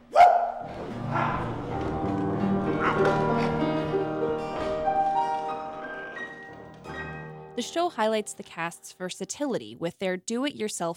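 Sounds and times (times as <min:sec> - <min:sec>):
stage performer voicing a dog bark for a puppet dog: 0:00.0 - 0:00.6
steady instrumental music with sustained tones: 0:00.8 - 0:08.5
speech: 0:07.6 - 0:10.9.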